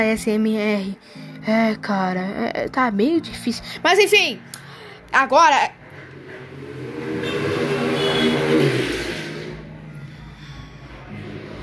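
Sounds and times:
speech: 0.0 - 5.8
motorcycle engine droning past: 5.7 - 9.9.

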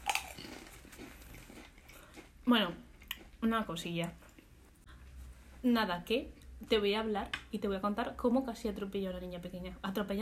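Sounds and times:
potato chips being chewed: 0.0 - 2.4
speech: 2.5 - 4.2, 5.6 - 10.2.

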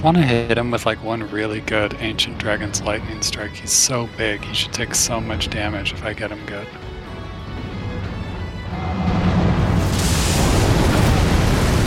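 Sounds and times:
speech: 0.0 - 6.9
video game giant blasting a wave of snow: 8.4 - 11.8.

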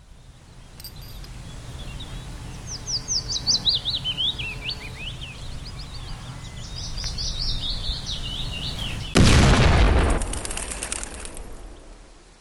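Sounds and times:
birds chirping outdoors: 0.0 - 9.4
small test explosion of a homemade bomb: 9.1 - 12.1.

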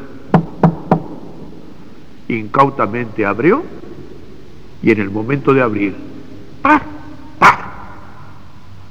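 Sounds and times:
woman's knuckles knocking on a wooden house door: 0.3 - 1.4
speech: 2.3 - 3.8, 4.8 - 7.0.

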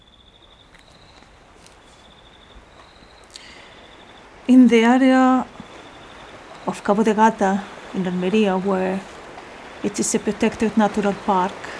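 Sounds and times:
crickets trilling: 0.0 - 8.7
seaside surf: 1.2 - 11.7
speech: 4.5 - 5.5, 6.7 - 9.1, 9.8 - 11.7.

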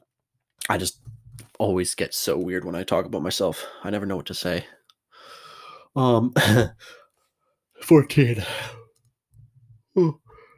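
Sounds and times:
speech: 0.7 - 4.8, 6.0 - 7.0, 7.8 - 8.8, 10.0 - 10.2
person yawning: 10.0 - 10.3.

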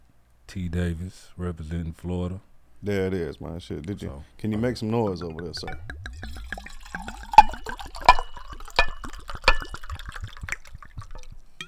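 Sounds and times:
speech: 0.5 - 6.3
liquor poured into a cup as a libation at a comedy show: 5.5 - 11.5.

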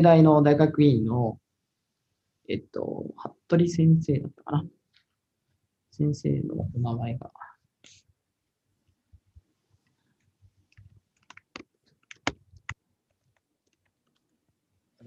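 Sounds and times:
speech: 0.0 - 1.4, 2.5 - 4.8, 5.9 - 8.0
typing on a computer keyboard: 10.7 - 14.3.

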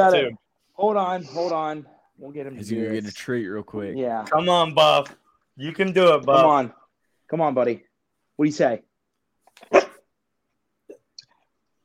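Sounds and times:
speech: 0.0 - 8.9
dog barking: 9.6 - 10.0.

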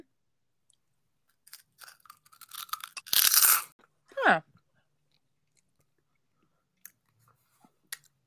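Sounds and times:
sour cream and onion potato chips crunching: 1.4 - 3.7.

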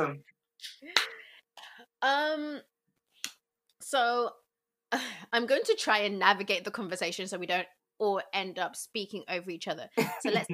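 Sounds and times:
speech: 0.0 - 1.1, 1.8 - 2.7, 3.8 - 10.5
single sharp hand clap: 0.9 - 1.2.

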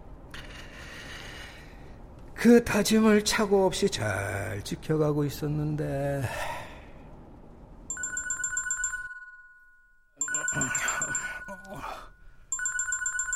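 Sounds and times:
speech: 2.4 - 6.6
telephone ringing with electronic trilling: 7.9 - 13.3.

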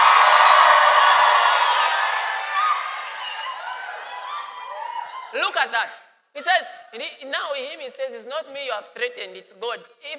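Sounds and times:
crowd screaming and cheering: 0.0 - 5.4
speech: 5.4 - 10.1.

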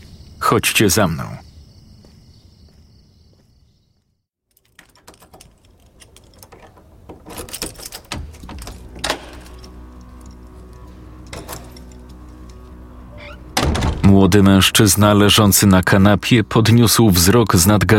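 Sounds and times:
speech: 0.5 - 1.5, 14.3 - 17.9
key turning in a door lock: 4.5 - 14.1.

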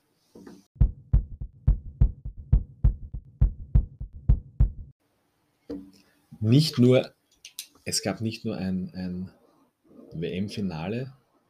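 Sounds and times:
heartbeat sound effect thumping in a lub-dub rhythm: 0.8 - 5.0
speech: 6.4 - 7.2, 7.9 - 9.4, 10.2 - 11.2.

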